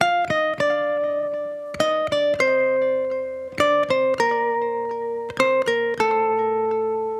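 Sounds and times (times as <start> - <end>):
dry guitar loop in G minor: 0.0 - 7.1.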